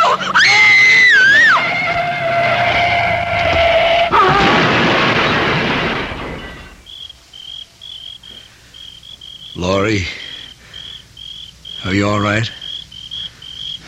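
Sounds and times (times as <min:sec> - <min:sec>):
car tires skidding with a wavering screech: 0:00.4 - 0:07.0
crash debris rumbling: 0:01.4 - 0:10.8
car with failed brakes crashing into a tree: 0:02.5 - 0:06.9
speech: 0:12.1 - 0:12.6.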